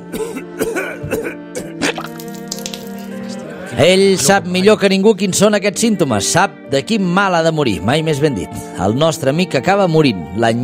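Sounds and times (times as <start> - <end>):
throat clearing: 0.1 - 2.0
person coughing harsh wet coughs: 0.1 - 2.1
speech: 3.8 - 10.6.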